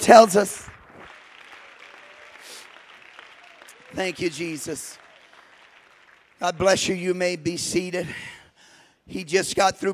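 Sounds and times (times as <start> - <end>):
church congregation clapping their hands: 0.0 - 8.0
speech: 0.1 - 0.7, 3.9 - 5.0, 6.4 - 8.4, 9.1 - 9.9.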